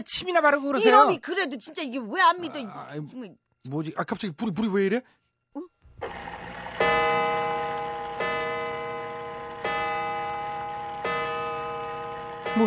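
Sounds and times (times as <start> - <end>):
speech: 0.0 - 6.4
clock bell chiming: 6.5 - 12.6.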